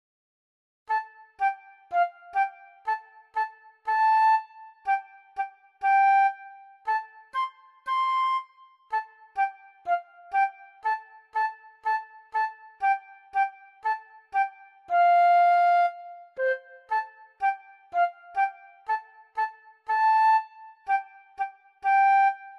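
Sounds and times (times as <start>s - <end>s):
flute melody: 0.9s - 22.5s.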